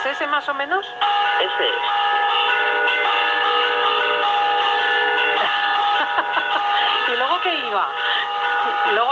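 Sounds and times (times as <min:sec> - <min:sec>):
village church bells ringing morning greeting peal: 0:00.0 - 0:09.1
speech: 0:00.1 - 0:02.5, 0:07.4 - 0:09.1
laughter: 0:05.4 - 0:07.4.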